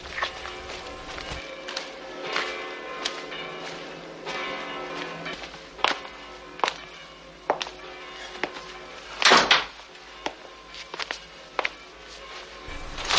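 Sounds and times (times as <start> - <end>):
church bell ringing: 0.0 - 13.1
wooden doors shutting in a house: 12.7 - 13.1.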